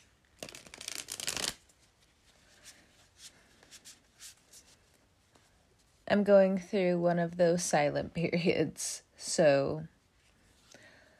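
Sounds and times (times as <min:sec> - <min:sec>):
tarot card deck riffle-shuffled: 0:00.4 - 0:01.7
speech: 0:06.1 - 0:09.9.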